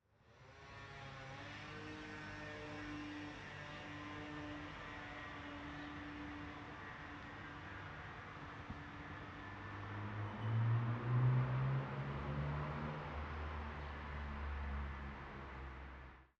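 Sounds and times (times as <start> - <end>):
car: 0.0 - 16.3
moped: 0.3 - 6.6.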